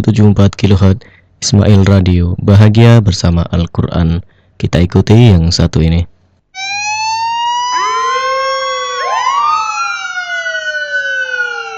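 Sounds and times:
speech: 0.0s - 6.1s
sirens of a passing hearse and ambulance wailing: 6.6s - 11.7s.

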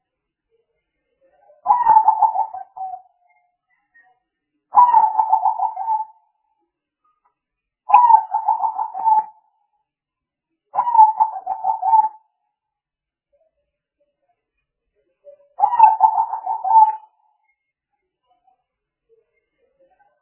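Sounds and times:
spotted dove cooing: 1.7s - 3.0s, 4.8s - 6.1s, 7.9s - 9.4s, 10.8s - 12.2s, 15.6s - 17.0s.

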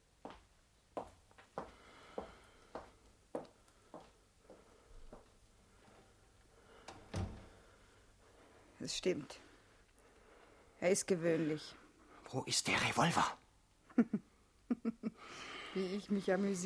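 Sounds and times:
wooden window shutters being closed: 6.8s - 7.6s
speech: 8.8s - 9.5s, 10.8s - 13.4s, 14.0s - 14.3s, 15.8s - 16.6s.

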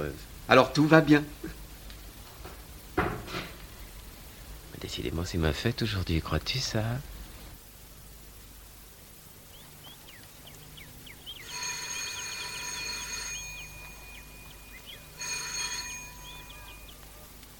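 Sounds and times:
faint hiss: 0.0s - 17.5s
speech: 0.1s - 1.6s, 4.8s - 7.1s
telephone ringing with bright buzzing bell tone: 11.4s - 17.3s.

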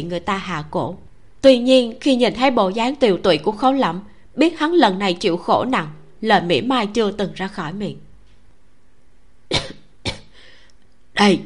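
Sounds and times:
speech: 0.0s - 8.0s, 11.2s - 11.4s
hoarse man coughing hard and dry, shivering with cold: 9.5s - 10.3s.

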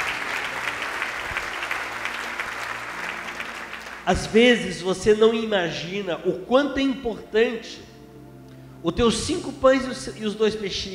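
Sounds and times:
congregation clapping in a church: 0.0s - 4.6s
speech: 4.1s - 7.9s, 8.8s - 10.9s.

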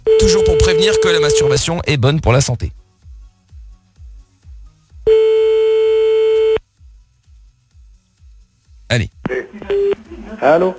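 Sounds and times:
telephone line tone while placing a call: 0.1s - 1.6s, 5.1s - 6.6s
speech: 0.2s - 2.8s, 8.9s - 10.7s.

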